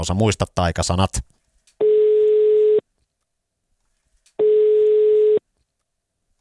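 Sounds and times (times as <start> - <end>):
speech: 0.0 - 1.4
telephone ringback tone while a call is being placed: 1.8 - 2.8, 4.4 - 5.4.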